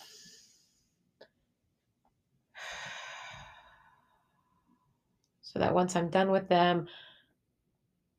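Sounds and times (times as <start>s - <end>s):
deep controlled breaths for meditation: 2.6s - 4.3s
speech: 5.5s - 7.1s.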